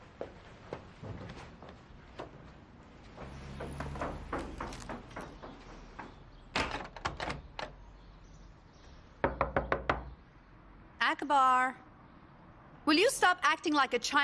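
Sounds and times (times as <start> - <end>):
knocking on a closed door: 3.2 - 5.7, 9.2 - 10.2
speech: 11.1 - 11.8, 12.9 - 14.2.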